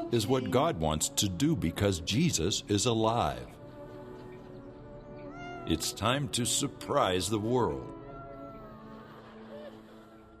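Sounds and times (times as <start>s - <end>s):
speech: 0.1s - 3.6s, 5.7s - 8.0s
cat meowing in a played video: 5.3s - 5.8s.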